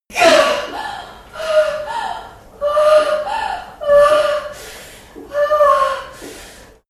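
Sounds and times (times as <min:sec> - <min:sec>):
mother moaning while giving birth: 0:00.1 - 0:04.6, 0:05.3 - 0:06.2.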